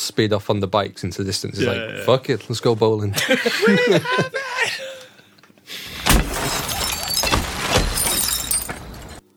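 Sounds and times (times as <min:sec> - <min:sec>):
speech: 0:00.1 - 0:04.8
laughter: 0:03.1 - 0:05.2
car being smashed: 0:05.9 - 0:09.2
car glass shattering: 0:05.9 - 0:09.2.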